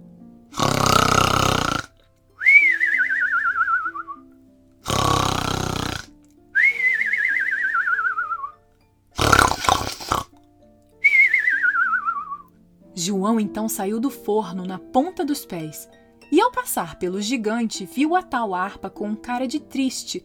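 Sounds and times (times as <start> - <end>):
loud cartoon-style snoring: 0.5 - 1.9, 4.8 - 6.1, 9.2 - 10.3
wavering cartoon-style whistle sliding downward on the exhale: 2.4 - 4.2, 6.6 - 8.6, 11.0 - 12.5
speech: 13.0 - 20.2.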